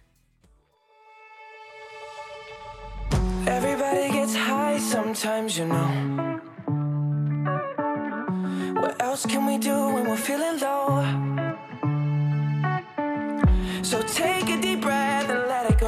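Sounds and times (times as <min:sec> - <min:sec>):
pop song with sung vocals: 0:01.4 - 0:15.8
speech: 0:04.8 - 0:06.4, 0:09.2 - 0:11.5
loud electronic beat with heavy bass: 0:13.4 - 0:13.9.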